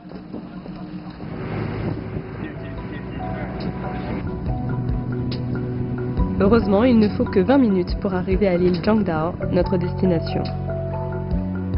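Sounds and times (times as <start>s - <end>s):
wind buffeting the microphone: 0.0s - 10.8s
motorboat engine droning across water: 0.0s - 11.7s
speech: 6.4s - 10.6s.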